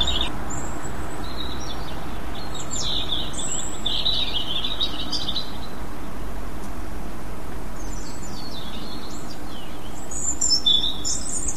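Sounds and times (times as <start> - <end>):
heavy steady low rumbling noise: 0.0 - 8.4
European robin song: 0.0 - 11.5.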